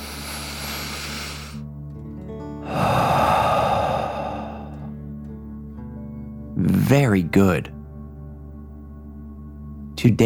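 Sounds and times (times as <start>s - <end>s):
deep breath in and out through the mouth: 0.0s - 1.6s, 2.6s - 5.0s
speech: 6.9s - 7.8s, 10.0s - 10.2s.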